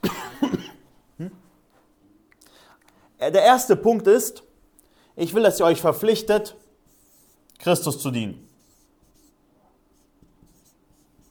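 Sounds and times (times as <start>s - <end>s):
low noisy background: 0.0s - 11.2s
speech: 1.2s - 1.4s, 3.2s - 4.5s, 5.2s - 6.6s, 7.6s - 8.4s
marker writing on a board: 6.5s - 7.5s, 8.4s - 11.2s.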